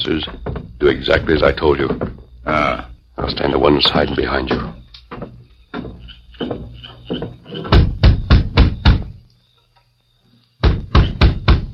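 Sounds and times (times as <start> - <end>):
speech: 0.0 - 4.8
knocking on a wooden door: 0.2 - 2.3, 4.4 - 9.2, 10.6 - 11.7.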